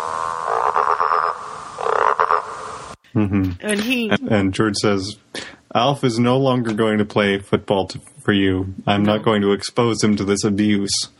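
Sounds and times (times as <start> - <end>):
toad croaking: 0.0 - 2.9
speech: 3.2 - 11.1.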